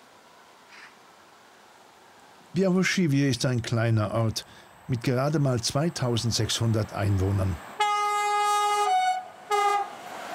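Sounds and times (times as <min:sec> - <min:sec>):
speech: 0:02.6 - 0:07.7
passing train sounding its horn signal in a small village: 0:07.8 - 0:10.0.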